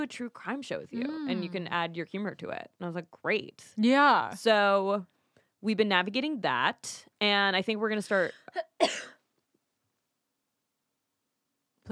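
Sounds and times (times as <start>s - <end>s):
speech: 0.0s - 9.1s
cough: 8.5s - 9.3s.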